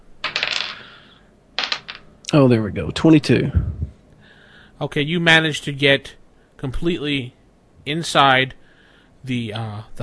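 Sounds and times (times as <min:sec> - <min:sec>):
dice rattling on a hard table: 0:00.2 - 0:01.0, 0:01.6 - 0:02.0
speech: 0:02.3 - 0:03.8, 0:04.8 - 0:08.6, 0:09.2 - 0:10.0.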